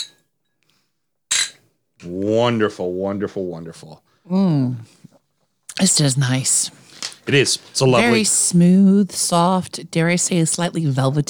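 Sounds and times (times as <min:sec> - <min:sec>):
drinking glasses clinking in a toast: 0:00.0 - 0:00.2, 0:01.3 - 0:01.6
speech: 0:02.0 - 0:05.1, 0:05.8 - 0:11.2.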